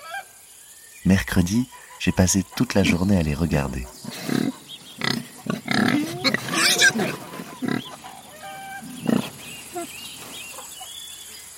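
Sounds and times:
speech: 0:01.0 - 0:04.6
piglets grunting: 0:02.8 - 0:09.9
piglets squealing: 0:04.1 - 0:09.9.

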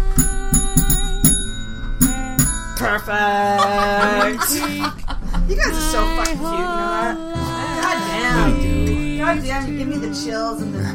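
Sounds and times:
bell rung by guests: 0:00.0 - 0:04.8
speech: 0:02.9 - 0:08.6, 0:09.2 - 0:10.9
laughter: 0:03.4 - 0:09.5.

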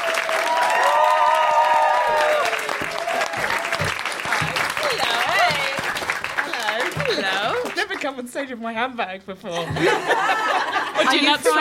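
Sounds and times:
audience whooping and cheering: 0:00.0 - 0:05.8
audience clapping: 0:00.0 - 0:08.2
laughter: 0:06.5 - 0:08.0, 0:09.5 - 0:11.6
speech: 0:08.1 - 0:11.6.

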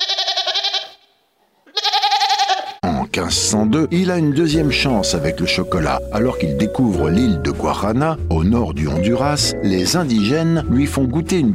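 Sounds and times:
goat bleating: 0:00.0 - 0:02.8
speech: 0:03.1 - 0:11.5.

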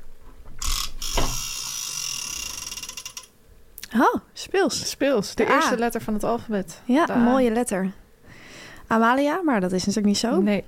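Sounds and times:
game letter wheel spinning with ratcheting clicks: 0:00.6 - 0:03.4
speech: 0:03.9 - 0:08.0, 0:08.9 - 0:10.6.

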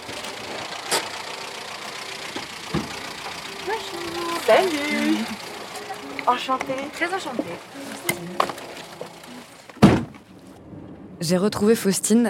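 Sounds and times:
dented car engine idling outside a country train station near Paris: 0:00.0 - 0:10.6
two voices exchanging greetings: 0:03.0 - 0:09.6
speech: 0:04.5 - 0:05.4, 0:06.3 - 0:07.8, 0:11.3 - 0:12.2.

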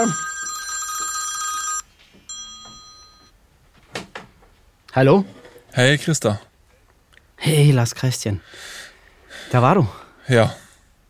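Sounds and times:
speech: 0:00.0 - 0:00.3, 0:05.0 - 0:06.5, 0:07.4 - 0:08.8, 0:09.5 - 0:10.6
telephone bell ringing: 0:00.0 - 0:03.4.

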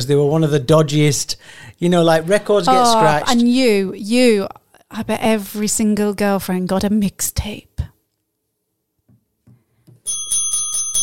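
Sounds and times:
speech: 0:00.0 - 0:07.9
small bell ringing in bright metallic dings: 0:10.1 - 0:11.0.

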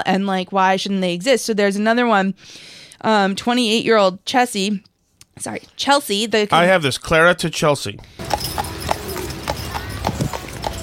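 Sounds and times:
speech: 0:00.0 - 0:08.6
horse hooves clip-clopping: 0:08.2 - 0:10.8.

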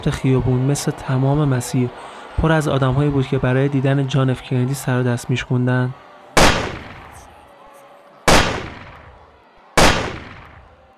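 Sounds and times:
speech: 0:00.0 - 0:06.0
sharp loud gunshots with decay: 0:06.4 - 0:07.2, 0:08.3 - 0:09.0, 0:09.8 - 0:10.7.

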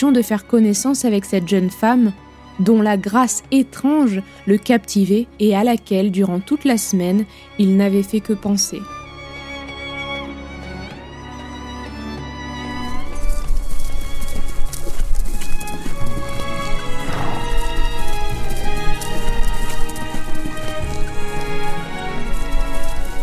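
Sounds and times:
speech: 0:00.0 - 0:09.0
sustained tonal music: 0:00.0 - 0:23.2
ridden horse hooves clip-clopping at a trot along a road: 0:12.6 - 0:23.2.

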